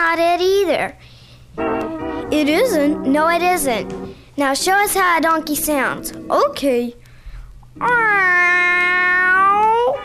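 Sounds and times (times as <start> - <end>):
speech: 0.0 - 7.0, 7.8 - 8.7
human voice imitating a cat meow: 7.8 - 10.0.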